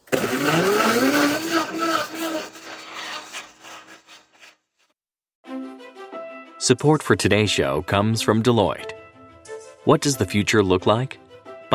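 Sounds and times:
blender whirring while mixing a cocktail: 0.0s - 3.9s
speech: 6.7s - 8.9s, 9.8s - 11.7s.

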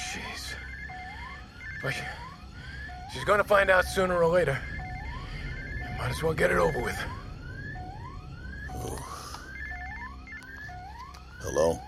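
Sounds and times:
alarm wailing in rising electronic sweeps: 0.0s - 11.8s
speech: 1.8s - 2.3s, 3.1s - 4.7s, 6.0s - 7.2s, 11.4s - 11.8s
low rumble: 3.8s - 10.3s.

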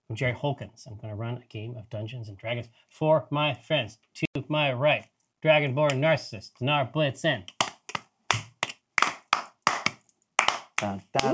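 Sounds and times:
speech: 0.1s - 7.6s, 10.8s - 11.3s
sharp hand claps: 7.5s - 11.3s.

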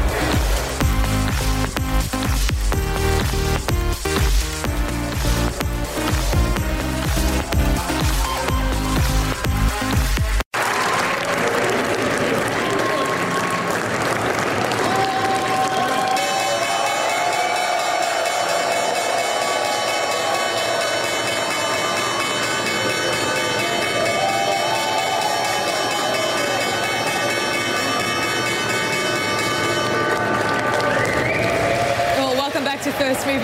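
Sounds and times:
stock exchange opening bell ringing: 0.0s - 10.4s, 16.1s - 30.9s
crowd cheering and clapping on a stock exchange trading floor: 0.0s - 33.4s.

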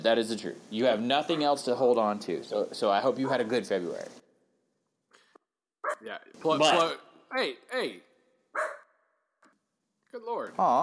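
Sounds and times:
speech: 0.0s - 4.2s, 6.0s - 8.8s, 10.1s - 10.8s
dog barking: 1.3s - 1.6s, 3.2s - 3.5s, 5.8s - 6.1s, 8.5s - 9.0s.

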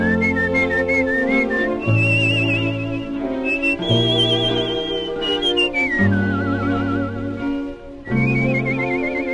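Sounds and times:
melodic whistling with vibrato: 0.0s - 9.3s.

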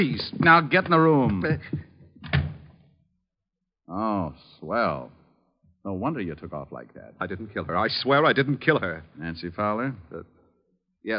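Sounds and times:
speech: 0.0s - 2.4s, 3.9s - 5.2s, 5.8s - 10.4s
door being shut: 2.2s - 2.8s.

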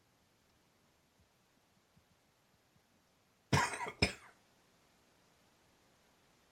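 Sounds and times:
man with a summer cold and strep throat coughing: 3.6s - 4.3s.

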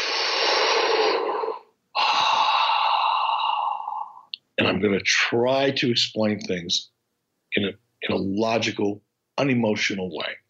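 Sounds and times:
deep breath drawn and released: 0.0s - 4.4s
speech: 4.6s - 6.9s, 7.6s - 10.4s.

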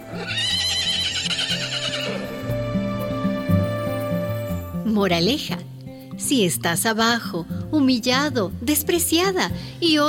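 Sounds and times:
horse whinnying: 0.0s - 2.5s
music: 0.0s - 10.0s
speech: 0.1s - 0.6s, 5.0s - 5.7s, 6.3s - 10.0s.

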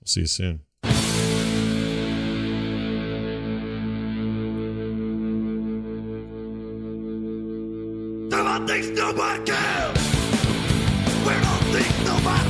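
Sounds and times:
speech: 0.1s - 0.7s
heavily distorted effects-laden guitar chords: 0.8s - 12.4s
ska punk band playing a rock song cover: 8.3s - 12.4s.

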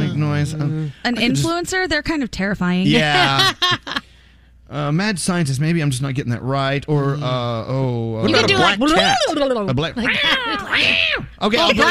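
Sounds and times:
speech: 0.2s - 4.0s, 4.7s - 11.8s
person imitating a black cat's meows and yowls: 10.1s - 11.3s.

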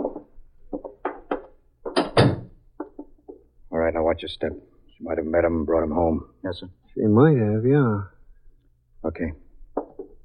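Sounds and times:
front door being worked open with hollow thunks and clunks: 1.9s - 2.6s
speech: 3.9s - 8.1s, 9.1s - 9.4s.

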